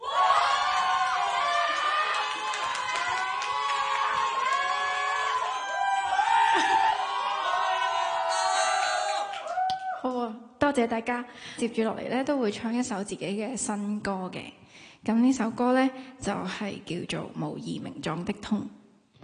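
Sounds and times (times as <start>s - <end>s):
concert crowd cheering: 0.0s - 10.1s
concert crowd clapping: 0.2s - 10.3s
speech: 10.7s - 19.2s.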